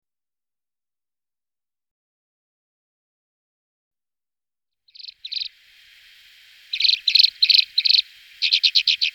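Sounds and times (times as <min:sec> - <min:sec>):
alpine accentor song of rapid buzzy trilled notes: 0:04.9 - 0:09.1
faint steady hum: 0:05.0 - 0:09.1.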